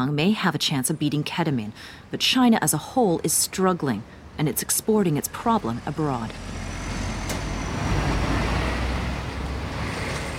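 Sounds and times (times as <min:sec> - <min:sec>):
speech: 0:00.0 - 0:06.7
heavy traffic noise of trucks entering a port: 0:01.7 - 0:10.3.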